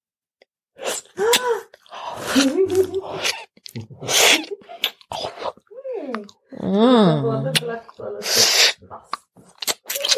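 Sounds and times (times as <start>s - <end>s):
person making wet nibbling mouth sounds: 0.8s - 6.3s, 7.5s - 10.1s
speech: 2.4s - 4.4s, 6.7s - 8.5s.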